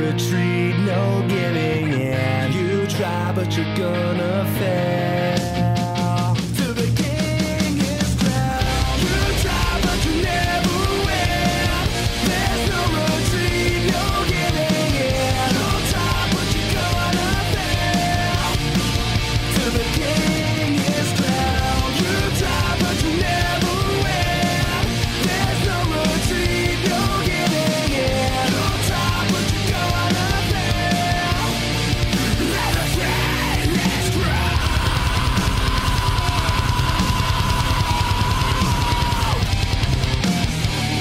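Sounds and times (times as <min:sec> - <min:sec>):
heavy guitars: 0:00.0 - 0:40.9
loud rock song played on radio: 0:00.0 - 0:40.9
speech: 0:03.0 - 0:05.4
driving drums: 0:04.6 - 0:40.9
shouted vocals: 0:08.6 - 0:18.7, 0:19.5 - 0:39.9.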